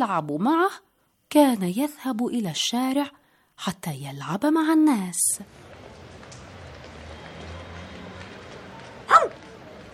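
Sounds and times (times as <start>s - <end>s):
speech: 0.0s - 5.7s
small dog barking: 9.1s - 9.4s.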